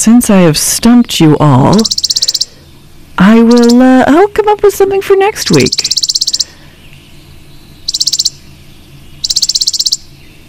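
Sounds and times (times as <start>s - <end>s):
speech: 0.0s - 2.4s, 3.2s - 6.0s
chipping sparrow song: 1.2s - 4.2s, 5.4s - 10.4s.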